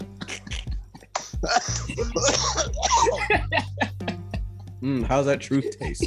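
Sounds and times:
breathy chuckling: 0.2 - 4.4
man coughing: 0.2 - 4.4
speech: 1.4 - 2.6, 4.8 - 6.0.

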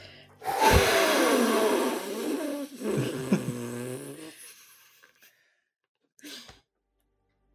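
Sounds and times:
voices imitating blowing on dandelions: 0.4 - 3.4.

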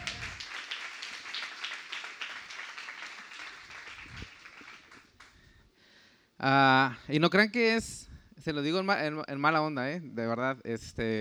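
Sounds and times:
crowd applauding: 0.0 - 5.4
speech: 6.4 - 11.1.

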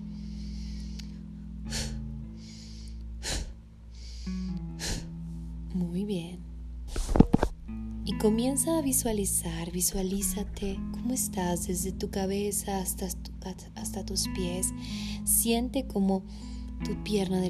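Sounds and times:
short sharp breaths: 0.0 - 5.2
soft musical drone: 0.0 - 6.9, 7.6 - 17.4
speech: 8.2 - 17.4.

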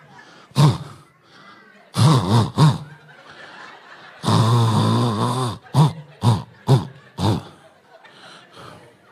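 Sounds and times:
laughter: 0.0 - 9.1
voice imitating snoring in a Morse code pattern: 0.6 - 1.1, 2.0 - 2.9, 4.2 - 7.6.

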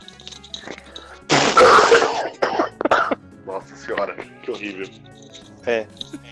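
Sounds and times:
person coughing harshly: 1.3 - 3.2
speech: 4.1 - 6.0.

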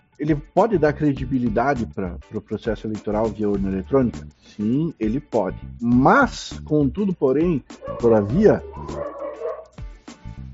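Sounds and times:
speech: 0.2 - 9.2
several dogs barking with sharp yaps and yips: 7.8 - 9.8.

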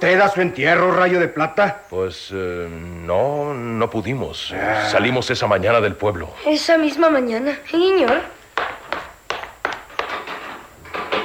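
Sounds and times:
speech: 0.0 - 8.4
quick footsteps on a hard floor toward a door: 7.9 - 11.2.

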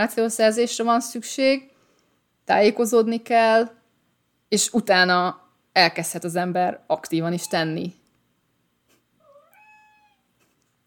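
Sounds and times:
speech: 0.0 - 1.7, 2.5 - 3.8, 4.5 - 8.0
room hum: 0.0 - 10.8
cat meowing: 9.2 - 10.3.

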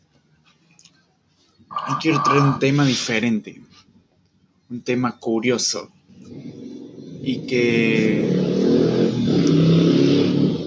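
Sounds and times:
speech: 1.7 - 3.7, 4.7 - 6.5, 7.2 - 8.4
motorcycle passing with rough revving engine: 6.1 - 10.6.

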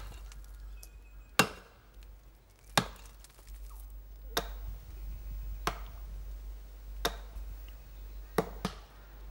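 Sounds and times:
low constant hum of the outdoors in a forest: 0.0 - 9.2
axe chopping down a hollow tree in a forest: 1.4 - 1.8, 2.7 - 3.1, 5.6 - 5.9, 7.0 - 7.3, 8.4 - 8.9.

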